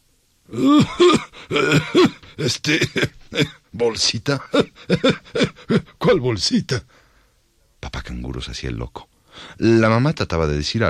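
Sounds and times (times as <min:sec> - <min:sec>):
voice imitating nervous throaty coughs and throat-clearing: 0:00.5 - 0:03.6, 0:04.4 - 0:06.0
speech: 0:00.5 - 0:07.0, 0:07.8 - 0:10.8.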